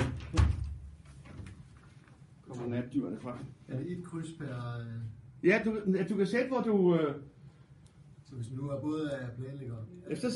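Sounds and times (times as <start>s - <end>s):
door closing: 0.0s - 1.6s
speech: 2.9s - 7.4s, 8.3s - 10.3s.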